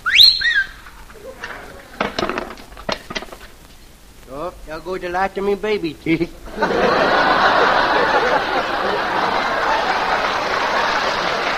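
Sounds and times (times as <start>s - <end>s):
child giving a shrill swooping whistle: 0.0s - 0.8s
sharp clattering knocks: 2.0s - 3.6s
speech: 4.8s - 7.1s
laughter: 6.1s - 11.5s.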